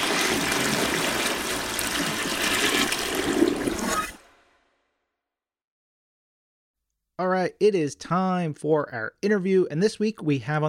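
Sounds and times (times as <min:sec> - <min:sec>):
toilet flushing: 0:00.0 - 0:04.3
speech: 0:07.2 - 0:10.6.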